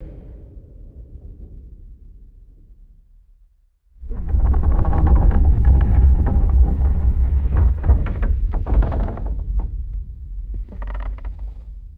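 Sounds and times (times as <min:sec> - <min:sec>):
heavy wood creaking: 0:04.0 - 0:11.6
deep rumbling: 0:04.0 - 0:11.8.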